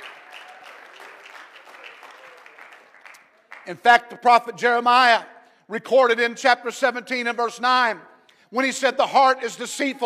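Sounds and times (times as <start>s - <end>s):
audience clapping hands: 0.0s - 4.0s
speech: 3.7s - 10.0s.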